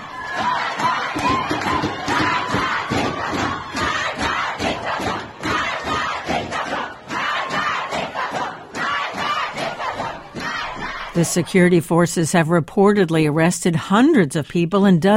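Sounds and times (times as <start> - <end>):
large protest crowd of women and men chanting slogans: 0.0 - 11.5
speech: 11.2 - 15.1.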